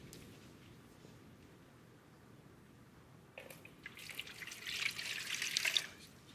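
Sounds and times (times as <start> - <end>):
water poured over feet splashing and trickling: 3.4 - 6.1.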